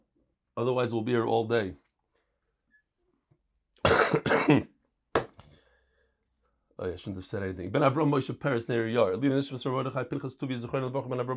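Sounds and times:
speech: 0.6 - 1.8, 4.2 - 4.7, 6.8 - 11.3
person in a harsh fit of raspy coughing: 3.8 - 4.8.

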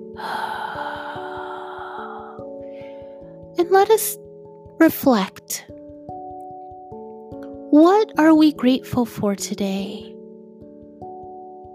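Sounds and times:
deep breath drawn in and let out: 0.0 - 3.5
speech: 0.2 - 0.4, 3.6 - 4.2, 4.8 - 5.8, 7.8 - 10.1.

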